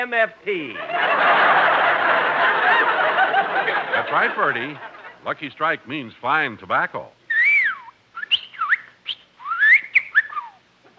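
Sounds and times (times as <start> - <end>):
speech: 0.0 - 2.9, 3.6 - 7.2
laughter: 0.7 - 5.2
bird whistling and chirping in bright sliding notes: 7.3 - 10.6.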